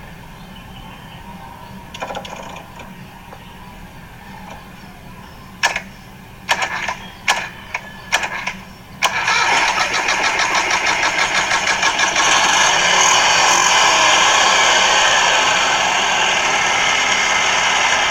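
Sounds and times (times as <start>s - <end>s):
car engine starting with a hose fed into its intake manifold: 5.6s - 18.0s.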